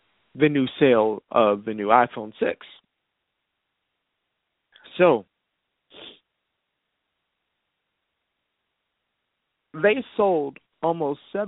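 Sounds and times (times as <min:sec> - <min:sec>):
speech: 0:00.4 - 0:02.8, 0:05.0 - 0:05.3, 0:09.8 - 0:11.4
single sharp loud sneeze: 0:05.9 - 0:06.2.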